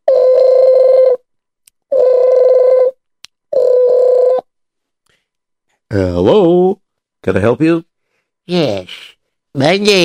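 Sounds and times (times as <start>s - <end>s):
telephone ringing: 0.0s - 1.3s, 1.9s - 4.5s
speech: 5.9s - 7.9s, 8.5s - 10.0s.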